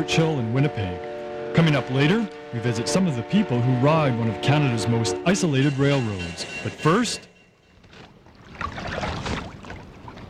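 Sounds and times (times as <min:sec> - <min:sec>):
speech: 0:00.0 - 0:07.3
canoe paddle stroking through water on the Miramichi River in New Brunswick: 0:07.8 - 0:10.2.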